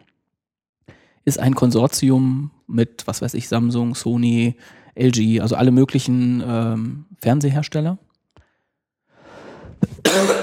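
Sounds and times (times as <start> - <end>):
speech: 1.2 - 8.1, 10.0 - 10.4
person coughing: 9.8 - 10.4.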